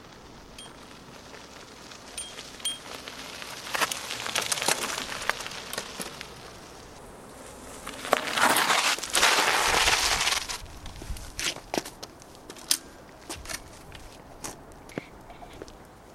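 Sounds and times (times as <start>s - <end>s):
bicycle braking on a gravel path: 0.0s - 14.2s.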